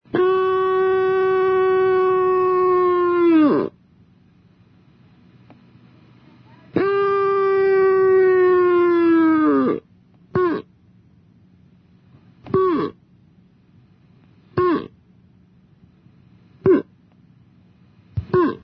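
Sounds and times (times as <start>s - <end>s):
moose call: 0.1s - 3.8s, 6.8s - 10.7s, 12.5s - 13.0s, 14.6s - 15.0s, 16.6s - 16.9s, 18.2s - 18.6s.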